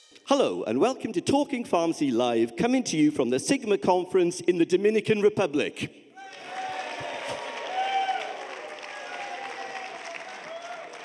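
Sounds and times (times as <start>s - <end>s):
speech: 0.2s - 6.0s
live audience at a pharmacy conference in the Dominican Republic clapping and cheering: 6.2s - 11.0s
scattered audience shouts: 6.2s - 11.0s.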